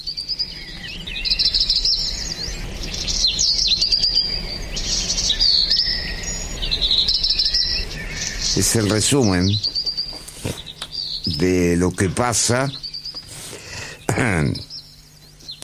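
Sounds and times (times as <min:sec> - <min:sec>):
faint insect-like hiss: 0:00.0 - 0:15.6
small bird chirping: 0:00.0 - 0:15.6
speech: 0:08.6 - 0:09.7, 0:11.4 - 0:12.8.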